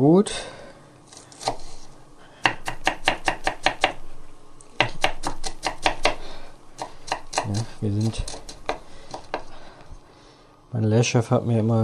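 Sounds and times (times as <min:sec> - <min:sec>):
speech: 0:00.0 - 0:00.6, 0:07.8 - 0:08.4, 0:10.8 - 0:11.8
knife finely chopping onions on a board in a fine-dining kitchen: 0:02.4 - 0:04.0, 0:04.8 - 0:09.5.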